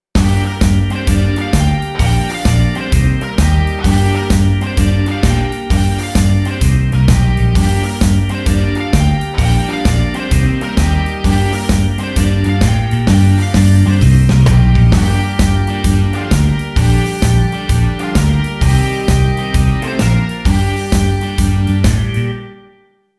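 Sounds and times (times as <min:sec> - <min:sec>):
pentatonic rock music in G minor at 130: 0:00.2 - 0:22.6.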